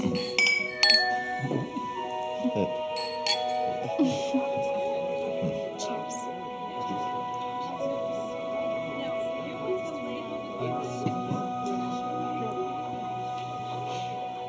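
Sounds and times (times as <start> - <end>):
several glasses clinking in a toast: 0.0 - 2.1, 2.9 - 4.0
murmur of voices: 0.0 - 14.4.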